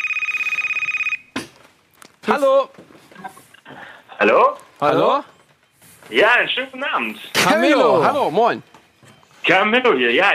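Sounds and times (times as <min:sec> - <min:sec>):
telephone ringing with an incoming call: 0:00.0 - 0:01.4, 0:04.2 - 0:10.3
speech: 0:02.3 - 0:03.4, 0:04.2 - 0:05.3, 0:06.1 - 0:08.7, 0:09.5 - 0:10.3.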